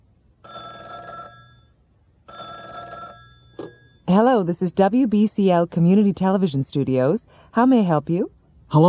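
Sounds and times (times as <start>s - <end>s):
telephone ringing: 0.4s - 4.3s
speech: 4.1s - 8.8s.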